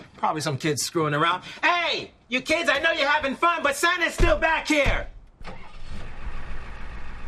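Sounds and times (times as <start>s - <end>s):
speech: 0.2s - 5.1s
truck engine starting and rumbling: 5.4s - 7.2s.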